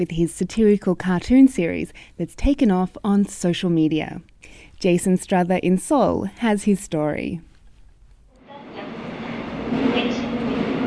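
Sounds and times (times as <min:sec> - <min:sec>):
speech: 0:00.0 - 0:07.5
subway train rumbling on a morning commute in South Korea: 0:08.5 - 0:10.8.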